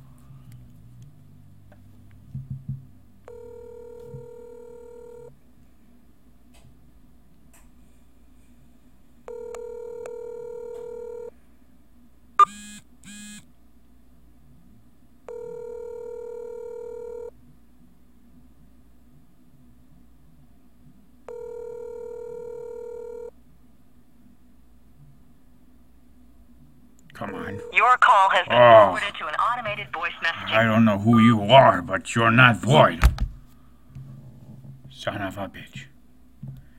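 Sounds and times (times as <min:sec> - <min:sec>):
telephone ringback tone: 0:03.3 - 0:05.3, 0:09.3 - 0:11.3, 0:15.3 - 0:17.3, 0:21.3 - 0:23.3, 0:27.4 - 0:28.8
speech: 0:27.9 - 0:33.1, 0:35.1 - 0:35.9.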